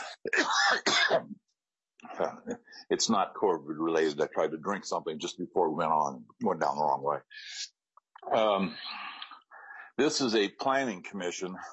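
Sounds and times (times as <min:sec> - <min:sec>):
person clearing throat: 0:00.0 - 0:01.3
person coughing: 0:00.0 - 0:01.3
speech: 0:02.2 - 0:09.1, 0:10.0 - 0:11.7.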